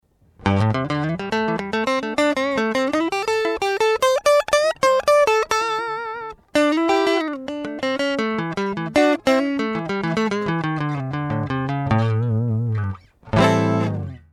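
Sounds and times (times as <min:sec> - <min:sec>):
guitar with Neck Ironstone Platinum pickups: 0:00.4 - 0:14.3.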